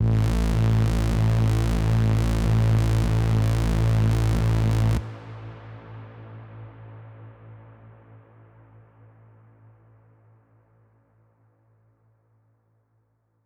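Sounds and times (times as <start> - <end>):
chiptune bass: 0.0 - 5.0.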